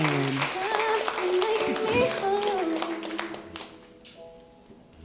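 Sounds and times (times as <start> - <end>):
small audience applause: 0.0 - 3.8.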